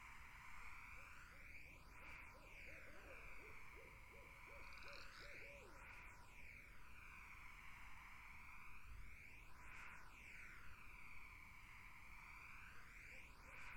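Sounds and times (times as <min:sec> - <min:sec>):
steady insect drone in a summer wetland: 0:00.0 - 0:13.7
barred owls giving rapid series of short arched hoots in a summer wetland: 0:02.6 - 0:05.7.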